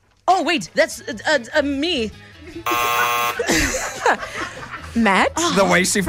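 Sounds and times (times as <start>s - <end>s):
speech: 0.4s - 6.0s
laughter: 2.5s - 5.8s
loud harsh game show buzzer: 2.7s - 3.7s.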